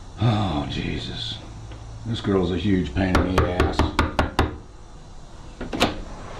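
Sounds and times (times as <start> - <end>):
speech: 0.2 - 4.0
hard knocking on a door: 3.1 - 4.6.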